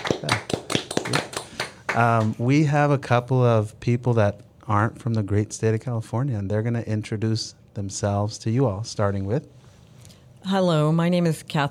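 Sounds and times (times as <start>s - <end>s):
small group clapping: 0.0s - 2.4s
speech: 2.0s - 9.6s, 10.4s - 11.6s.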